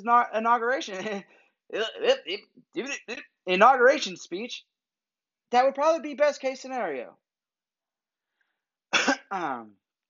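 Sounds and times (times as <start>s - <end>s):
speech: 0.0s - 4.7s, 5.5s - 7.2s, 9.0s - 9.8s
harsh raspy smoker's cough: 8.9s - 9.4s.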